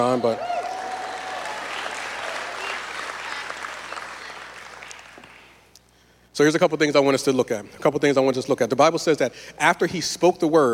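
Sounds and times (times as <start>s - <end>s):
speech: 0.0s - 0.5s, 6.4s - 10.7s
church congregation applauding: 0.0s - 5.6s.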